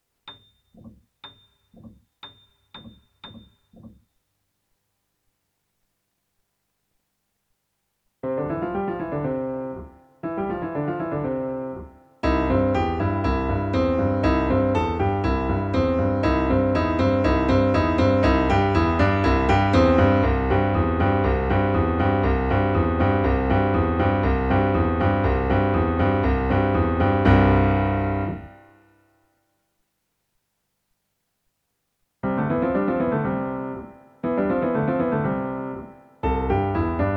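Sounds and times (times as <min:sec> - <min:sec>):
piano base: 0:08.2 - 0:29.0, 0:32.2 - 0:37.1.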